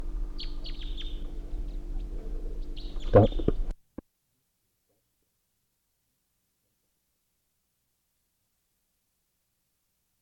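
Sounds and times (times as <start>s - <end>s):
steady low engine-like hum: 0.0s - 3.7s
bird calling from a spruce tree: 0.4s - 3.7s
speech: 3.1s - 3.4s.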